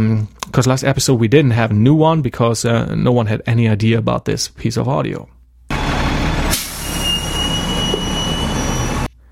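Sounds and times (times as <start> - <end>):
speech: 0.0 - 5.4
bus brake whine: 5.7 - 9.2
bus engine rumbling to a halt: 5.7 - 9.2
bus doors opening with pneumatic hiss: 6.5 - 9.1.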